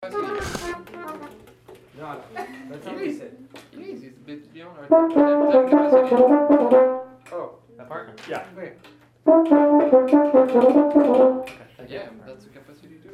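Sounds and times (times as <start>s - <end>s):
midbrass lick rehearsal: 4.9s - 7.2s, 9.3s - 11.6s.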